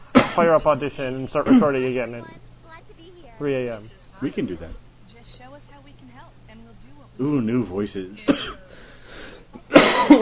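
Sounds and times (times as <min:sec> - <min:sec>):
speech: 0:00.4 - 0:02.4, 0:03.0 - 0:08.6
person coughing: 0:01.4 - 0:01.8, 0:08.3 - 0:08.7, 0:09.6 - 0:10.2.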